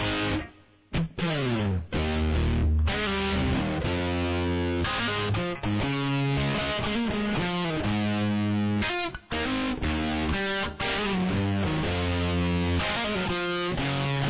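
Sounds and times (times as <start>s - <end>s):
guitar playing a verse: 0.0s - 14.2s.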